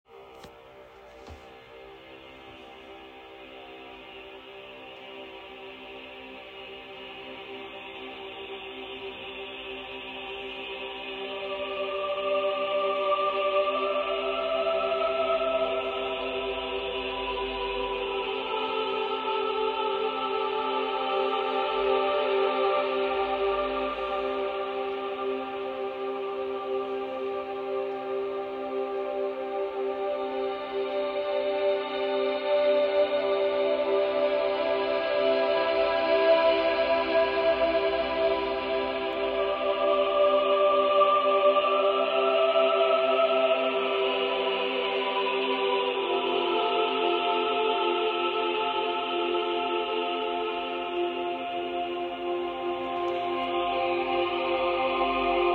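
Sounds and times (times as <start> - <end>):
relaxation music: 0.0 - 55.5.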